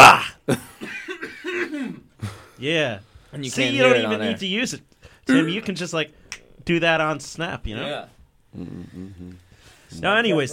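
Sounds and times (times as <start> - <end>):
speech: 0.5 - 0.7, 2.6 - 10.5
raspy cough sound effect from a soundboard button: 0.6 - 2.6.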